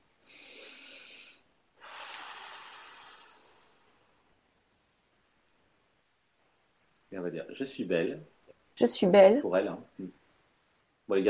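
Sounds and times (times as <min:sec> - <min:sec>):
slow deep breath in and out as a guided breathing exercise: 0:00.2 - 0:04.4
speech: 0:07.1 - 0:10.2, 0:11.1 - 0:11.2.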